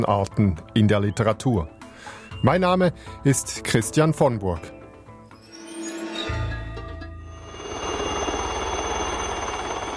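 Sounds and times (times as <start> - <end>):
speech: 0.0 - 4.8
Super Puma helicopter flying low over Switzerland: 7.4 - 9.9.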